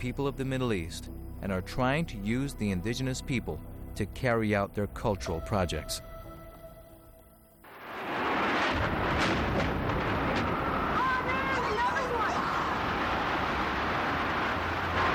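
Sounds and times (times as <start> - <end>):
speech: 0.0 - 6.1
crackling noise: 7.1 - 15.1
heavy sustained roar of rumbling debris: 7.7 - 15.1
loud explosion: 7.7 - 15.1.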